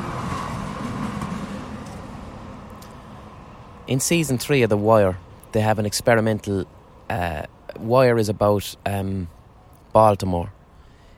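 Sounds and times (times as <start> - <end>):
tram rumbling past: 0.0 - 7.8
speech: 3.9 - 10.6.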